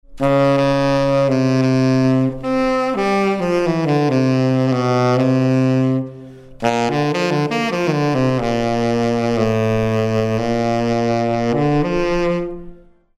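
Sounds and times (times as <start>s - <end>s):
tenor saxophone: 0.1s - 13.1s.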